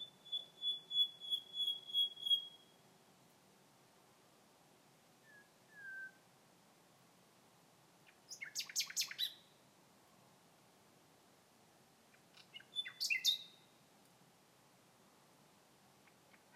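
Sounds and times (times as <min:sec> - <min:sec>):
Common nightingale singing: 0:00.0 - 0:02.8, 0:05.2 - 0:06.2, 0:08.0 - 0:09.5, 0:12.1 - 0:13.8.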